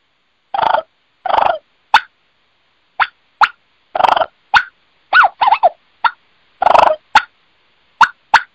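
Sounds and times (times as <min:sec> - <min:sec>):
wild turkey hen bubble clucks: 0:00.6 - 0:02.1, 0:03.0 - 0:07.3, 0:08.0 - 0:08.5.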